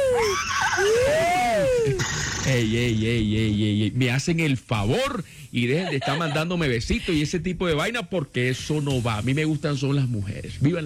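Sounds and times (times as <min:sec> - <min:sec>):
person imitating a horse neigh: 0:00.0 - 0:02.5
speech: 0:02.5 - 0:10.8
laughter: 0:05.7 - 0:07.2.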